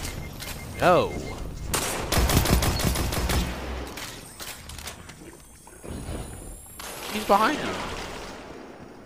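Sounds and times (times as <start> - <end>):
speech: 0.8 - 1.3, 7.3 - 8.0
machine gun fire in a video game: 1.8 - 3.9.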